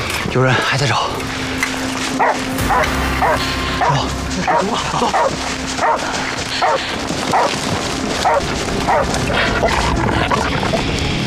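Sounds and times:
constant noisy background: 0.0 - 11.2
speech: 0.4 - 1.2, 2.2 - 11.1
police dog barking during a search: 2.2 - 3.9, 5.2 - 6.0, 6.6 - 7.5, 8.2 - 9.1.

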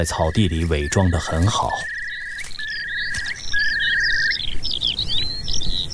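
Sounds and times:
speech: 0.0 - 1.9
female skylark chirping and trilling near her nest in grassland: 0.0 - 5.9.

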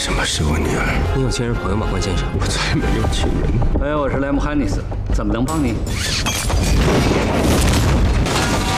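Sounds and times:
speech: 0.0 - 8.2
powerful bomb explosion: 6.8 - 8.7.

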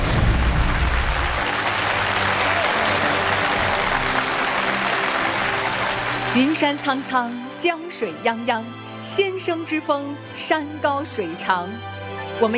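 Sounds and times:
large studio audience applause: 0.0 - 7.3
speech: 6.4 - 12.5.

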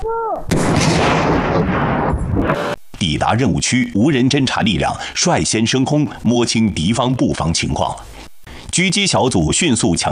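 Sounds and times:
demolition blast clearing a blocked road during a military march exercise: 0.5 - 2.8
speech: 3.0 - 10.1.

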